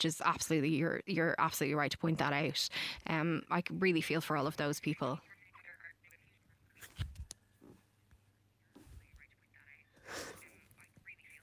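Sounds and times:
speech: 0.0s - 5.3s
voice breaking up over a bad phone line: 4.8s - 6.8s, 8.6s - 11.4s.

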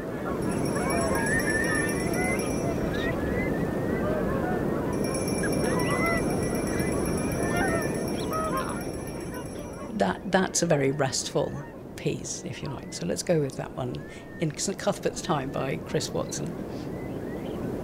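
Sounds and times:
surging waves: 0.0s - 10.0s
wind roaring: 0.3s - 9.9s
speech: 10.3s - 17.0s.

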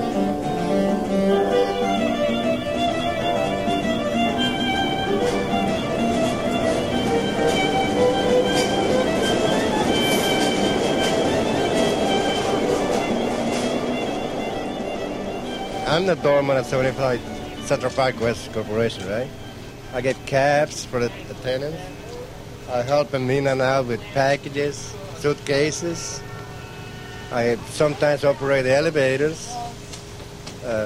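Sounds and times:
subway train rumbling along the tracks: 0.0s - 30.8s
faint subway train wheel squeals: 4.2s - 16.2s
speech: 16.0s - 22.0s, 22.7s - 26.3s, 27.3s - 29.6s, 30.6s - 30.8s.

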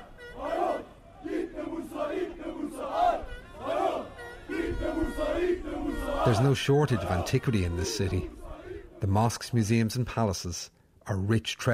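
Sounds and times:
large crowd of football fans chanting taunts: 0.0s - 9.1s
speech: 6.3s - 8.4s, 9.0s - 11.7s.

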